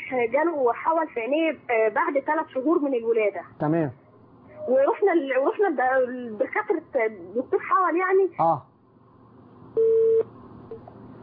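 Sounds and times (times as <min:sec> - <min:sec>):
speech: 0:00.1 - 0:04.0, 0:04.7 - 0:08.7
telephone busy tone after a dropped call on a call-in consultation line: 0:09.8 - 0:10.3.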